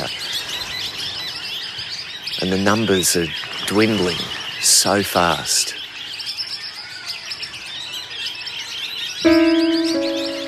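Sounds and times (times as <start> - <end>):
speech: 2.4 - 5.8, 9.2 - 9.6
critically endangered parrot flock chirping while feeding in trees: 9.2 - 10.4
steady tonal musical notes: 9.2 - 10.4.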